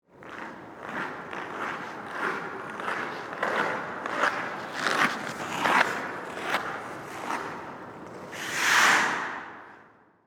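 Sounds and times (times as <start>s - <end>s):
ice skates passing and stopping on an indoor ice rink: 0.1s - 10.2s.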